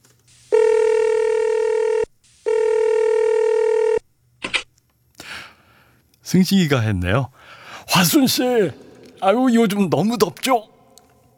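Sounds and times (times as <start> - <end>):
telephone ringing with buzzing tone: 0.5 - 4.0
speech: 6.3 - 10.7.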